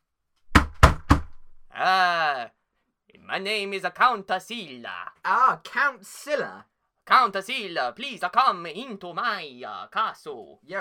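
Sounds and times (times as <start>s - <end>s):
heavy knocks on a wooden castle door: 0.5s - 1.5s
speech: 1.8s - 2.6s, 3.3s - 10.7s.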